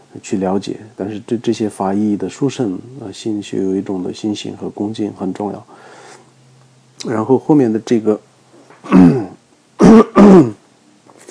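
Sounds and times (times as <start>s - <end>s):
speech: 0.1s - 6.0s, 7.0s - 9.2s
person clearing throat: 8.8s - 10.6s
person with a slight cough coughing: 8.8s - 10.6s.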